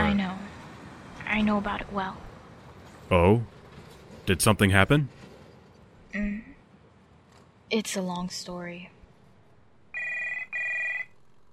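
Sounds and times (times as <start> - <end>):
speech: 1.4 - 2.3, 3.1 - 3.6, 4.3 - 5.2, 6.1 - 6.5, 7.7 - 8.9
house telephone ringing with electronic trill: 9.9 - 11.4.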